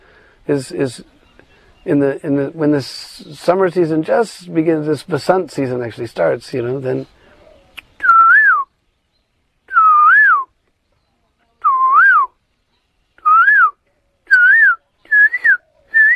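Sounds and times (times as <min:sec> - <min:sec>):
speech: 0:00.5 - 0:01.2, 0:01.8 - 0:07.2
person whistling an imitation of a small black songbird's morning song: 0:07.8 - 0:08.7, 0:09.7 - 0:10.6, 0:11.6 - 0:12.4, 0:13.2 - 0:16.1.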